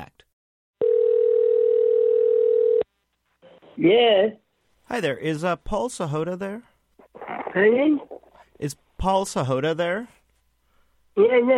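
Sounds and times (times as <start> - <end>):
steady electronic phone ringing tone down the line: 0.8 - 2.8
speech: 3.8 - 6.7, 7.6 - 10.2, 11.2 - 11.5.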